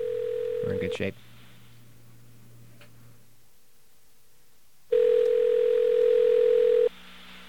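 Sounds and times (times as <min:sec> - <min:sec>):
telephone line tone while call connects: 0:00.0 - 0:01.0, 0:04.9 - 0:06.9
speech: 0:00.7 - 0:01.4.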